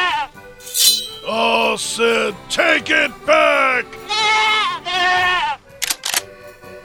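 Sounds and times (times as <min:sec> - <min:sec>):
speech: 0:01.3 - 0:04.0
goat bleating: 0:04.1 - 0:05.6.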